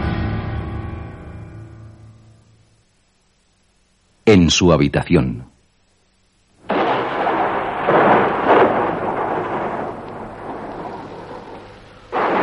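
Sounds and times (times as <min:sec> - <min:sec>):
rain hissing: 0:01.8 - 0:12.4
speech: 0:04.3 - 0:05.5
thunder crack and rumble: 0:06.6 - 0:12.4.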